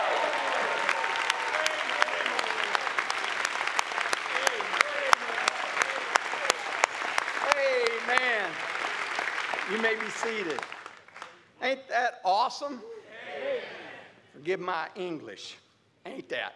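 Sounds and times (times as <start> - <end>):
faint voices and cheering: 0.0 - 10.7
large audience applause: 0.0 - 11.4
speech: 9.9 - 10.7, 11.6 - 12.9, 14.4 - 16.5.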